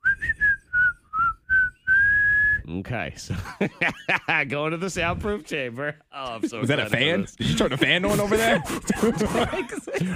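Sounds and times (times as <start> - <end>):
person whistling a short bright tune: 0.0 - 2.6
speech: 2.7 - 10.1
laughter: 3.3 - 4.6, 6.2 - 10.1.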